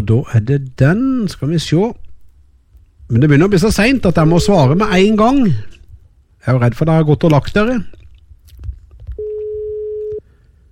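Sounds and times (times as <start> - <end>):
speech: 0.0 - 2.0, 3.1 - 5.8, 6.4 - 8.0
quiet phone line noise: 9.2 - 10.2
telephone ringing tone on an outgoing call: 9.2 - 10.2.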